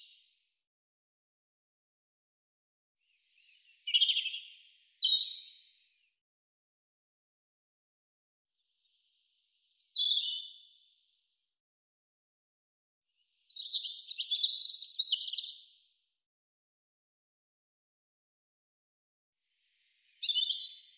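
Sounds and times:
European robin singing: 3.4s - 5.6s, 8.9s - 11.0s, 13.5s - 15.6s, 19.6s - 20.9s.

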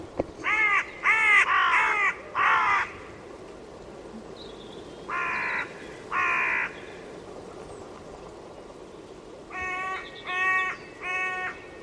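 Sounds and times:
low background hiss: 0.0s - 11.8s
bird giving harsh hoarse caws: 0.4s - 3.1s, 5.1s - 7.0s, 9.5s - 11.8s.

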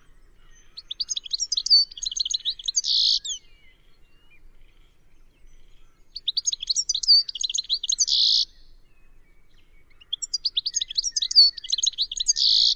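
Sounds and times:
bird chattering: 0.8s - 3.4s, 6.2s - 8.5s, 10.1s - 12.7s.

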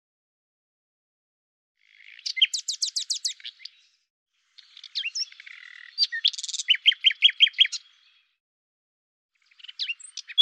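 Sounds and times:
common nightingale singing whistles and loud falling notes: 1.8s - 4.0s, 4.6s - 8.3s, 9.4s - 10.4s.

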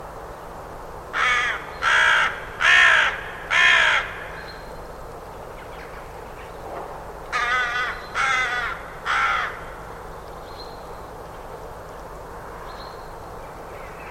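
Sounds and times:
low steady background hum: 0.0s - 14.1s
bird giving loud harsh caws: 1.2s - 4.6s, 7.3s - 9.9s.

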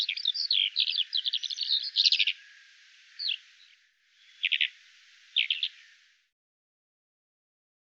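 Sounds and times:
bird chirping in scratchy bursts and sharp high notes: 0.0s - 6.2s.

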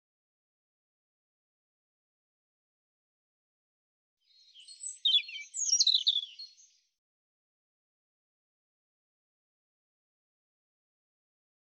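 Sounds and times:
European robin singing: 4.3s - 6.8s.

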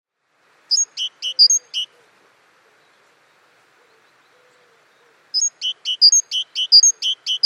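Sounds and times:
Great tit calls: 0.7s - 2.8s, 3.7s - 7.4s.

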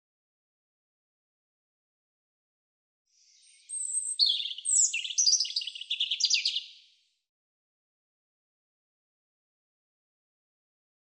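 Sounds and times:
European robin singing: 3.2s - 7.0s.

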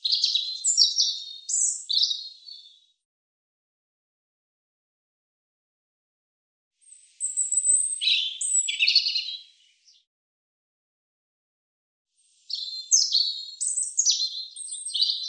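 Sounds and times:
European robin song: 0.0s - 2.9s, 6.8s - 10.1s, 12.2s - 15.2s.

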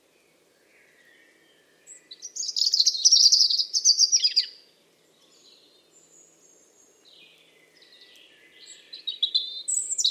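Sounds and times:
bird twittering: 2.0s - 4.6s, 8.6s - 10.0s.

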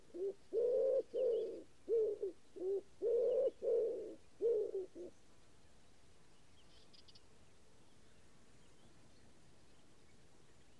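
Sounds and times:
common wood pigeon giving deep muffled coos: 0.0s - 5.1s.

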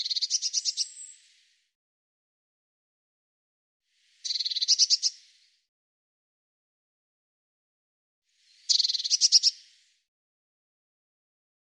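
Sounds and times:
Eurasian blue tit churr calls: 0.0s - 1.1s, 4.2s - 5.1s, 8.7s - 9.6s.

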